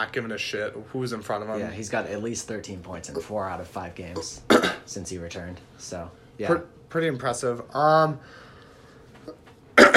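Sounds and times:
speech: 0.0s - 8.5s
harsh throaty cough: 4.5s - 4.8s, 9.8s - 9.9s.

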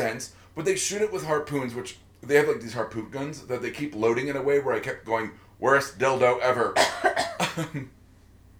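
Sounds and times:
speech: 0.0s - 8.0s
person coughing: 6.8s - 7.9s.

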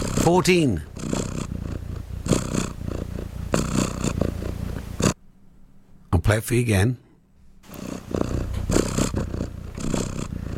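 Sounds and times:
cat purring: 0.0s - 5.2s, 7.6s - 10.5s
speech: 0.2s - 0.9s, 6.3s - 7.0s.

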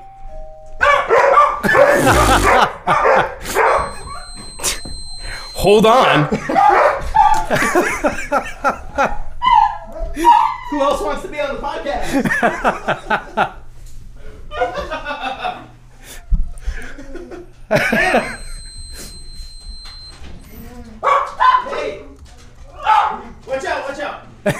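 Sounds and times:
dog barking in short bursts: 0.8s - 4.1s, 6.4s - 7.5s, 9.4s - 10.6s, 21.0s - 21.8s, 22.8s - 23.3s
people laughing: 1.6s - 4.1s, 6.2s - 9.3s, 12.0s - 13.6s, 14.5s - 15.8s, 16.7s - 18.6s
speech: 5.6s - 6.7s, 7.5s - 9.2s, 10.2s - 13.6s, 17.7s - 18.4s.

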